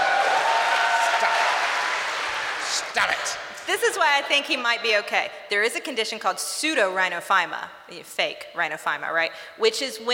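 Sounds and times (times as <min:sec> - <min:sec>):
audience applause at a talk: 0:00.0 - 0:03.4
speech: 0:02.9 - 0:10.1.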